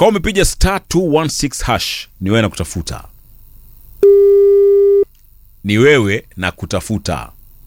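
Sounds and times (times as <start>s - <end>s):
speech: 0.0s - 3.1s, 5.6s - 7.3s
telephone call tone while waiting for pickup: 4.0s - 5.0s.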